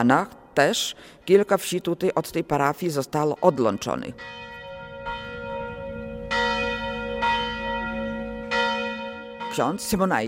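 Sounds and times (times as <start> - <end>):
speech: 0.0 - 5.2, 9.6 - 10.2
church bells of a three-bell parish church ringing: 3.1 - 10.2
low steady drone: 4.5 - 8.6.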